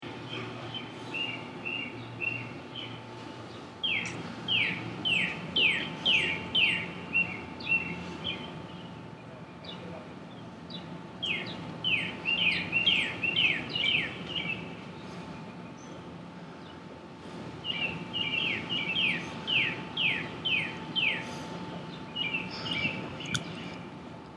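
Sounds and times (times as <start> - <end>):
outdoor morning ambience: 0.0 - 24.3.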